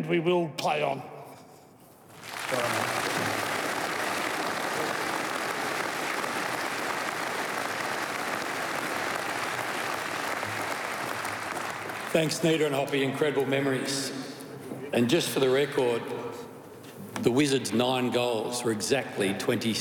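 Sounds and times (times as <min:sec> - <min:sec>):
speech: 0:00.0 - 0:01.1, 0:02.5 - 0:03.1, 0:12.1 - 0:16.5, 0:17.2 - 0:19.7
large crowd audience applause: 0:02.1 - 0:12.6.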